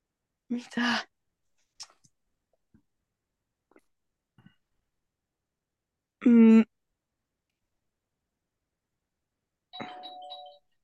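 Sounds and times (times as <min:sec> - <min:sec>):
speech: 0:00.5 - 0:01.1
doorbell chime: 0:09.8 - 0:10.8.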